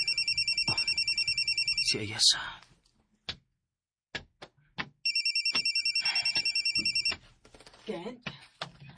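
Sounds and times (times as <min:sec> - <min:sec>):
cellphone ringtone in a fast electronic warble: 0:00.0 - 0:02.0, 0:05.0 - 0:07.2
speech: 0:01.9 - 0:02.6, 0:07.9 - 0:08.3.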